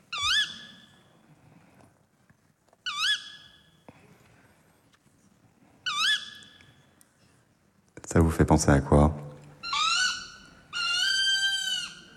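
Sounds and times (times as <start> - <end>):
tawny owl calling with shrieks and wavering calls: 0.1 - 1.0, 2.8 - 3.8, 5.8 - 6.8, 9.6 - 12.1
speech: 8.1 - 9.2.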